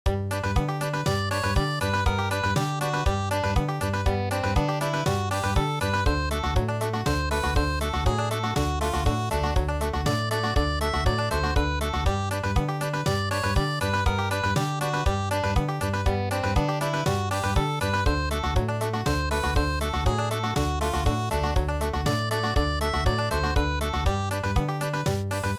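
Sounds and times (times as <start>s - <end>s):
country music tune: 0.1s - 25.5s.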